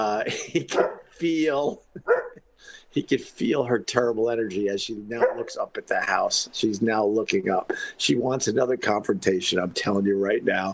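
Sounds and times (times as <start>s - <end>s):
laughter: 0.0s - 3.6s, 7.4s - 8.0s
speech: 0.0s - 10.7s
dog barking at a pregnant woman walking outside the house: 0.7s - 1.1s, 2.0s - 2.4s, 5.2s - 5.6s.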